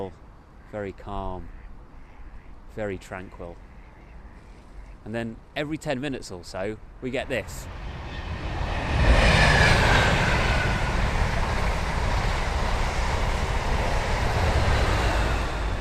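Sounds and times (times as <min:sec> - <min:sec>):
speech: 0:00.0 - 0:01.6, 0:02.7 - 0:03.7, 0:05.0 - 0:08.0
train rolling past near a station: 0:07.0 - 0:15.8.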